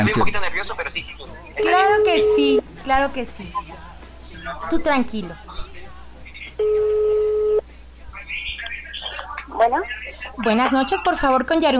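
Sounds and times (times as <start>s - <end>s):
speech: 0.0s - 3.9s, 4.5s - 5.5s, 9.6s - 11.7s
telephone ringing tone of an outgoing call: 1.6s - 2.6s, 6.6s - 7.6s.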